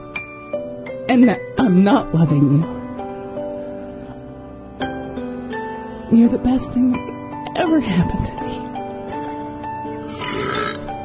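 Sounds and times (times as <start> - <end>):
speech: 1.1 - 2.8, 6.1 - 8.7
long drawn-out burp: 10.0 - 10.9.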